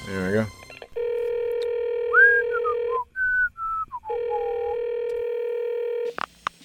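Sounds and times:
speech: 0:00.1 - 0:00.6
steady electronic telephone tone: 0:01.0 - 0:03.1, 0:04.0 - 0:06.1.

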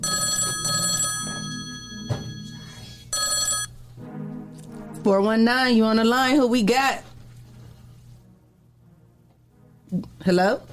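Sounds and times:
telephone ringing with an incoming call during a live show: 0:00.0 - 0:03.8
speech: 0:05.0 - 0:07.1, 0:09.9 - 0:10.7.

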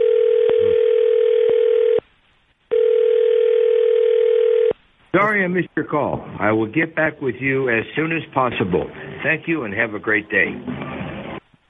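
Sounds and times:
telephone dial tone while placing a call: 0:00.0 - 0:02.0, 0:02.7 - 0:04.7
speech: 0:05.3 - 0:10.8.

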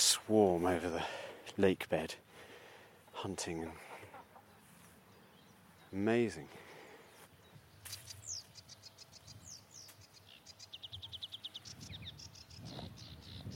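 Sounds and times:
speech: 0:00.2 - 0:02.2, 0:03.2 - 0:03.9, 0:05.9 - 0:06.6
sedge warbler singing fast urgent song: 0:04.4 - 0:13.5.

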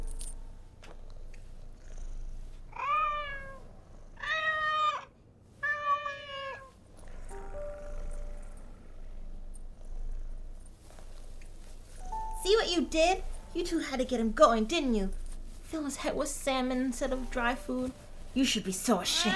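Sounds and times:
cat purring: 0:00.0 - 0:05.1, 0:06.6 - 0:19.3
cat meowing: 0:02.7 - 0:03.6, 0:04.2 - 0:06.8, 0:19.0 - 0:19.3
speech: 0:12.5 - 0:19.3.

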